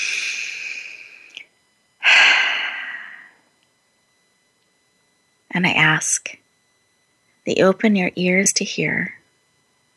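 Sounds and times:
deep breath during a guided eyes-closed exercise: 0.0 - 1.4, 2.0 - 3.4
speech: 5.6 - 6.4, 7.4 - 9.2.

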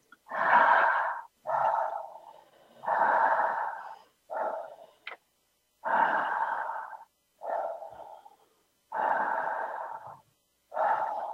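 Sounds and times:
person breathing in and out without pauses: 0.0 - 11.3.

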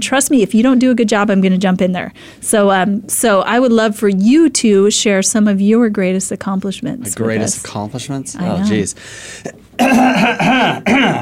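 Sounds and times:
speech: 0.0 - 11.1
person loudly clearing throat: 9.8 - 11.1.

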